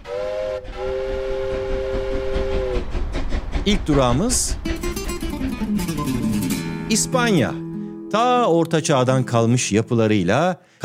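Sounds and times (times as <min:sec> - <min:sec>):
train whistle blast: 0:00.0 - 0:02.9
hissing steam from a train: 0:00.0 - 0:06.9
rumbling rail noise of a departing train: 0:00.0 - 0:07.8
speech: 0:03.7 - 0:04.7, 0:06.9 - 0:10.8.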